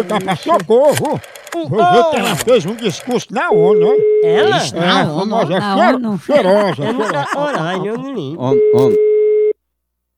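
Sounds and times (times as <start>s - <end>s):
laughter: 0.0s - 9.0s
speech: 0.0s - 9.0s
telephone ringing tone: 3.5s - 5.0s, 8.4s - 9.6s.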